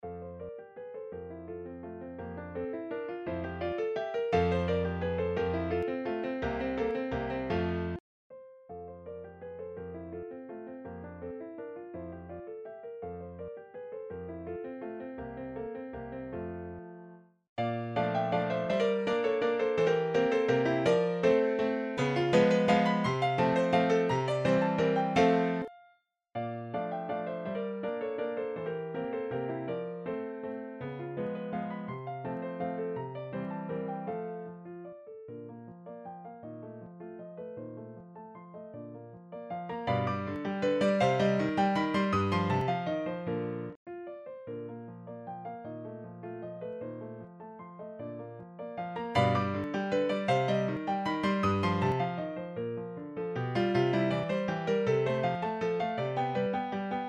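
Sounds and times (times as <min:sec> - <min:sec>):
piano waltz: 0:00.0 - 0:57.0.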